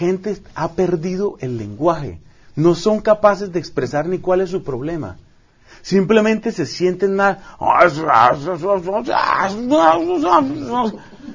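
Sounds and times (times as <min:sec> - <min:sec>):
speech: 0:00.0 - 0:11.2
man imitating grunts with wavering groans and growls: 0:09.0 - 0:11.3.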